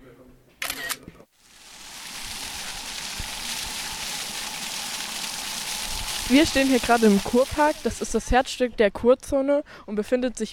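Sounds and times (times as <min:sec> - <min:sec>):
camera shutter clicks taking a photo: 0:00.6 - 0:01.0
steady hissing noise: 0:01.3 - 0:08.6
speech: 0:06.3 - 0:10.5.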